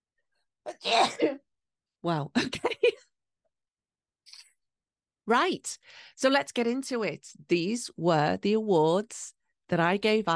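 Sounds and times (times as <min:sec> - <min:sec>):
person sneezing: 0:00.7 - 0:01.4
speech: 0:00.8 - 0:01.4, 0:02.0 - 0:02.7, 0:05.3 - 0:10.3.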